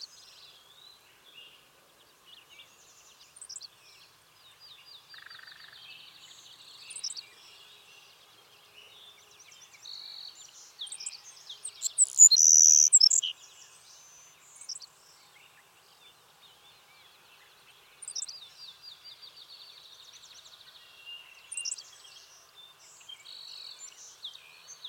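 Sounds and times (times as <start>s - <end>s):
Savannah sparrow high sizzling buzzy song: 0.0s - 24.8s
Savannah sparrow softer chips, trills and chirps: 10.9s - 13.2s.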